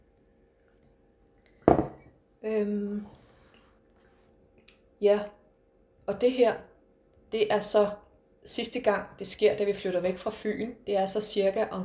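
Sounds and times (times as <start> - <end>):
glass knocking while drinking water: 1.7 - 2.1
speech: 2.4 - 3.2, 5.0 - 5.4, 6.1 - 6.7, 7.3 - 11.8.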